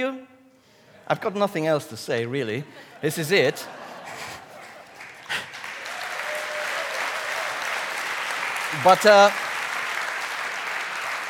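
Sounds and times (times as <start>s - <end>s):
speech: 0.0s - 0.3s, 1.1s - 4.3s, 8.8s - 9.4s
laughter: 2.6s - 5.7s
audience applause: 4.0s - 11.2s.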